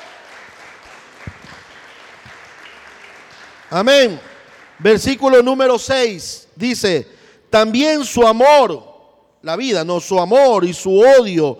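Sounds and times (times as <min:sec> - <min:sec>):
congregation applauding during a church service: 0:00.0 - 0:06.1
speech: 0:03.7 - 0:11.5.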